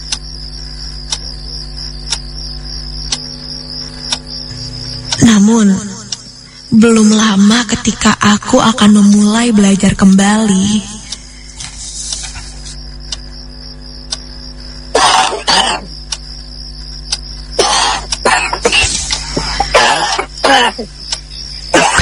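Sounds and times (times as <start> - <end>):
faint steady hum: 0.0 - 21.9
speech: 5.5 - 5.9, 6.8 - 10.9
person coughing in pain outside a bedroom: 14.9 - 15.9, 17.6 - 20.9, 21.7 - 21.9.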